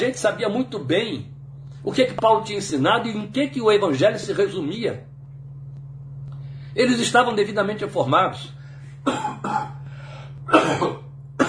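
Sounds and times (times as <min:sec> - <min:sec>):
speech: 0:00.0 - 0:05.1, 0:06.8 - 0:09.8, 0:10.5 - 0:11.0
low steady hum: 0:00.0 - 0:11.4
person coughing harshly: 0:09.0 - 0:09.8, 0:10.5 - 0:11.4.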